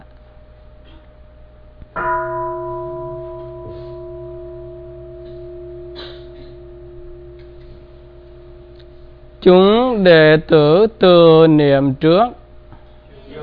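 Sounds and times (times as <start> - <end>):
Buddhist temple bell struck once during a ritual: 2.0 - 11.6
speech: 9.4 - 12.4.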